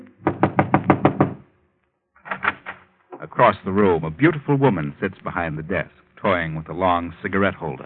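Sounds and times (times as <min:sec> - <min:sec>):
knocking on an office door: 0:00.2 - 0:01.4
speech: 0:03.4 - 0:07.8.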